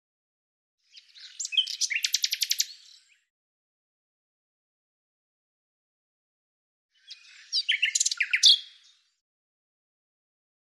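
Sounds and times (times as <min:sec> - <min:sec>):
bird song with scratchy notes and a run of high sharp notes: 0:00.8 - 0:03.3, 0:06.9 - 0:09.2.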